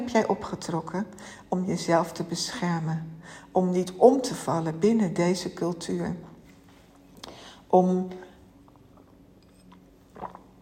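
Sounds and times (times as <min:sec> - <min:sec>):
speech: 0:00.0 - 0:06.3, 0:07.7 - 0:08.3
sipping water with wet mouth noises: 0:08.1 - 0:10.6
swallowing water: 0:08.6 - 0:10.6.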